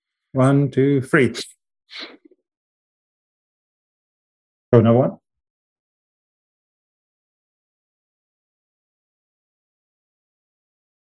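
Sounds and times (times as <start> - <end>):
speech: 0.4 - 2.2, 4.7 - 5.2
deep nasal sniff: 1.9 - 2.2.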